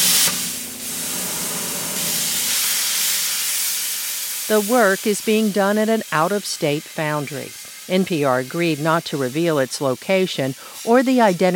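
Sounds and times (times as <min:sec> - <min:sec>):
cutting torch scoring the head of a statue at a foundry: 0:00.0 - 0:11.5
speech: 0:04.5 - 0:11.5.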